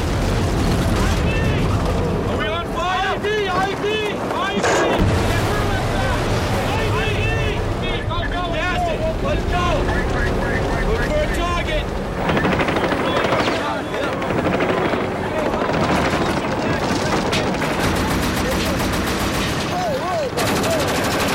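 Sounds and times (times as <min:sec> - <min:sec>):
continuous rumble: 0:00.0 - 0:21.3
voices: 0:00.8 - 0:21.3
improvised explosive device detonating against a military convoy: 0:04.6 - 0:07.9.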